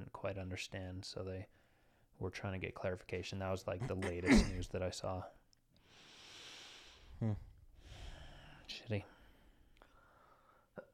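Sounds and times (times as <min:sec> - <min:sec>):
speech: 0:00.2 - 0:01.6, 0:02.2 - 0:05.4, 0:07.2 - 0:07.5, 0:08.9 - 0:09.1
sharp throaty cough: 0:03.8 - 0:04.7.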